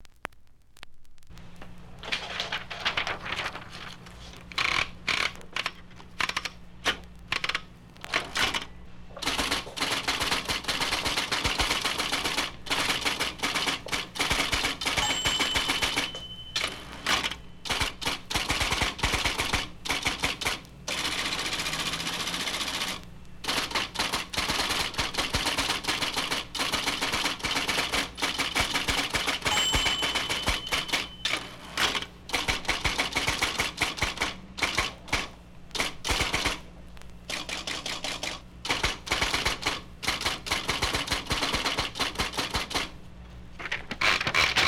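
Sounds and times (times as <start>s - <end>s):
IBM electric typewriter: 2.0s - 36.7s, 37.3s - 43.0s, 43.6s - 44.6s.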